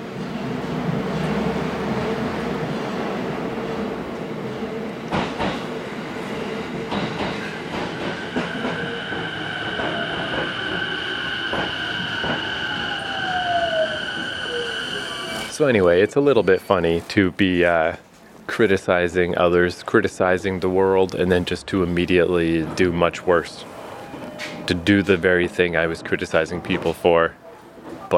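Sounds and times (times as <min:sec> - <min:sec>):
train rolling past on the railway: 0:00.0 - 0:16.3, 0:18.9 - 0:28.1
train metallic squeal: 0:08.2 - 0:15.6
speech: 0:15.6 - 0:23.7, 0:24.4 - 0:27.4.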